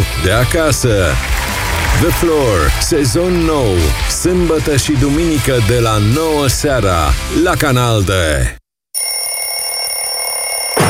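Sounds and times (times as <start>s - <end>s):
speech: 0.2s - 1.3s, 2.0s - 8.6s
alarm clock ringing with a shrill electronic tone: 9.0s - 10.8s.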